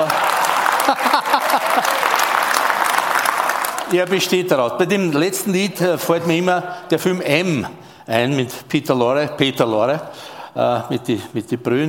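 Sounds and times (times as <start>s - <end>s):
laughter: 0.0s - 2.3s
audience applause: 0.0s - 4.2s
speech: 3.9s - 11.8s.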